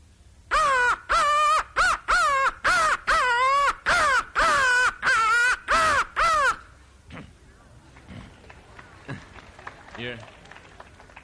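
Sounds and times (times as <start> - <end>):
person imitating crow caws: 0.5 - 7.2
speech: 10.0 - 10.3.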